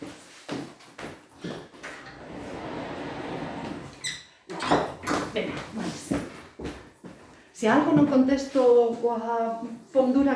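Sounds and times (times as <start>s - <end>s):
door scraping and rubbing as it is pushed closed: 1.9s - 4.2s
speech: 7.6s - 10.3s.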